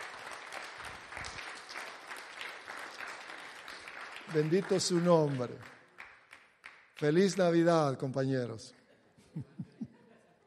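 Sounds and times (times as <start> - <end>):
church audience clapping: 0.0 - 8.3
speech: 4.3 - 5.8, 7.0 - 8.8, 9.4 - 9.6
laughter: 8.8 - 10.4.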